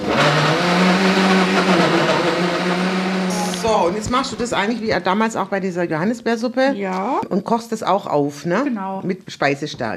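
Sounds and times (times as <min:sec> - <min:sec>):
blender whirring as it purees peaches: 0:00.0 - 0:05.3
speech: 0:03.8 - 0:09.9.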